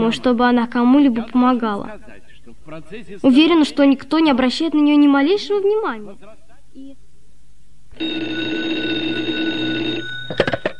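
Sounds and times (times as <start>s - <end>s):
speech: 0.0s - 7.0s, 8.0s - 9.0s
old-fashioned telephone bell ringing: 7.9s - 10.7s.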